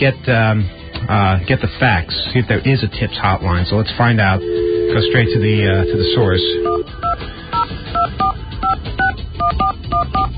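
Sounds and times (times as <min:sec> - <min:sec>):
speech: 0:00.0 - 0:07.1
touch-tone phone dialing a number: 0:04.4 - 0:10.3.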